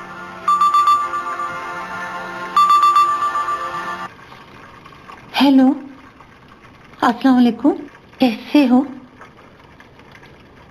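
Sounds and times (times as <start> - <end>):
phone ringtone for an incoming call: 0.0 - 4.1
speech: 5.4 - 5.8, 7.0 - 9.0.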